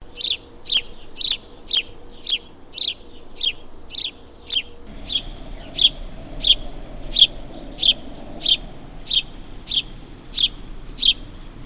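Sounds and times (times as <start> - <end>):
house sparrow chirping: 0.2 - 11.6
faint low hum: 4.9 - 11.6.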